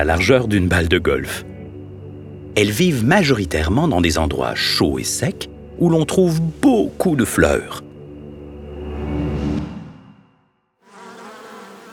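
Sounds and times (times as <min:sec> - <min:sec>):
speech: 0:00.0 - 0:01.5, 0:02.6 - 0:07.8
bee buzzing: 0:10.8 - 0:11.9.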